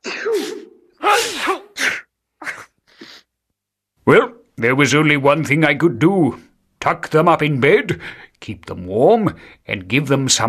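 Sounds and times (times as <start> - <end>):
person sneezing: 0.0 - 3.3
speech: 4.1 - 10.4.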